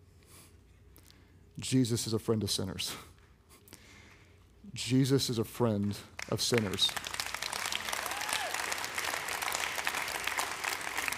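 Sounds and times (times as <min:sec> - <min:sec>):
speech: 0:01.6 - 0:03.1, 0:04.8 - 0:07.0
light polite applause from a small audience: 0:06.2 - 0:11.1.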